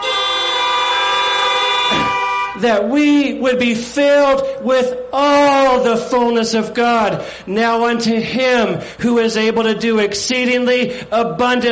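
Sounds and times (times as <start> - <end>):
several car horns honking: 0.0 - 2.7
speech: 2.6 - 11.6.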